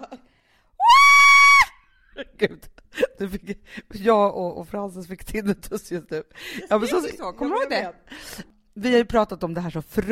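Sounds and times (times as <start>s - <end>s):
woman imitating her own excited scream: 0.8s - 1.8s
speech: 2.4s - 10.1s.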